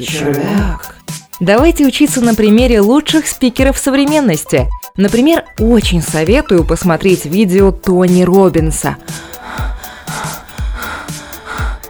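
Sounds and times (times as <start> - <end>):
heavy excited breathing with sharp gasps: 0.0 - 1.3, 9.0 - 11.8
speech: 0.0 - 9.4.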